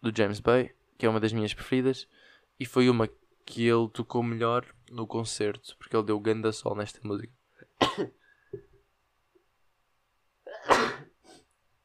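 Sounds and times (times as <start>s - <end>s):
speech: 0.0s - 8.7s
loud sneezes: 10.5s - 11.4s.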